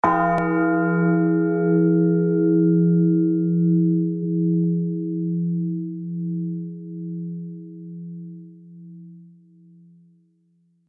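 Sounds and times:
large funeral death bell tolling: 0.0s - 5.4s.

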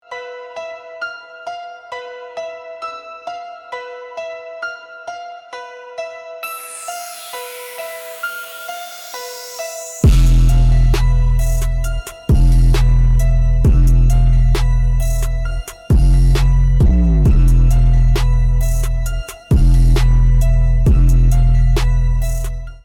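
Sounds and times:
hard hitting bass boosted bassline: 7.0s - 22.8s.

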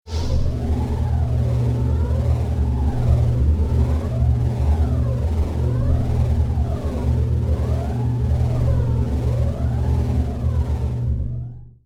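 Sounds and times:
force field energy field hum: 0.1s - 11.5s.

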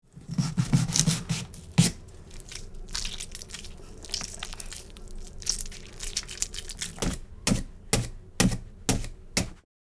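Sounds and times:
knife carving Halloween pumpkin: 0.1s - 9.6s.

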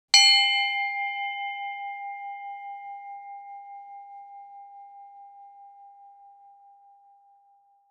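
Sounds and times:
handbell ringing: 0.2s - 4.0s.

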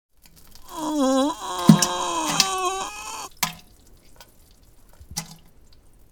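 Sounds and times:
person defecating: 0.6s - 3.3s
person vocalizing while defecating: 0.6s - 3.3s.

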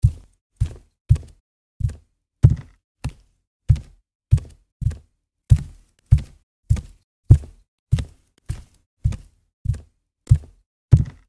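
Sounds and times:
fast barefoot walking footsteps on wooden floor: 0.0s - 11.2s.

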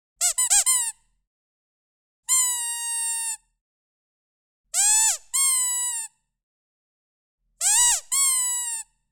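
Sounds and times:
rubber chicken toy squeaking: 0.2s - 1.0s, 2.3s - 3.4s, 4.8s - 6.1s, 7.6s - 8.9s.

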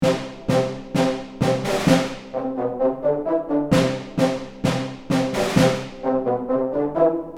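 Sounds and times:
marching field drum: 0.0s - 2.4s, 3.7s - 6.0s
marching brass band: 0.0s - 7.3s.

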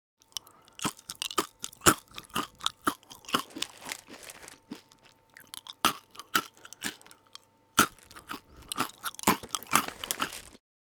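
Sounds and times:
eating potato chips with mouth open: 0.2s - 10.6s.

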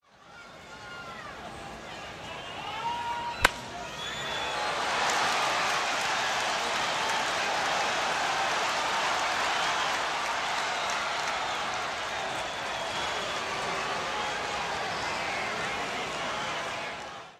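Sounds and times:
baseball game crowd cheering: 0.1s - 17.3s.

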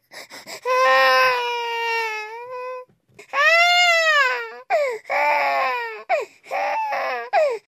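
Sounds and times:
baby crying: 0.5s - 7.6s.

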